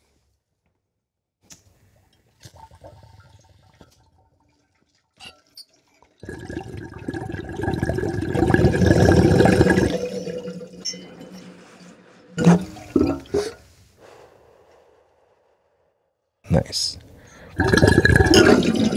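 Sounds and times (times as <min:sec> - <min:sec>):
bong water bubbling during a hit: 0:02.3 - 0:13.7, 0:17.5 - 0:18.9.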